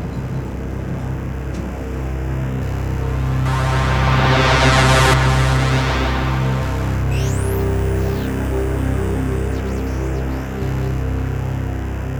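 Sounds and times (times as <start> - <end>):
dense nervous synthetic drone with layered tones: 0.6 - 12.1
bright hissing swell: 2.9 - 9.6.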